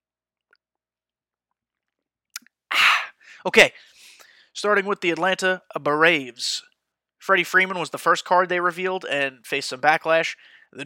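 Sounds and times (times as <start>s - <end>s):
person sipping and swallowing water: 1.8s - 3.1s
breathy burst: 2.7s - 4.5s
speech: 3.4s - 3.9s, 4.6s - 10.8s.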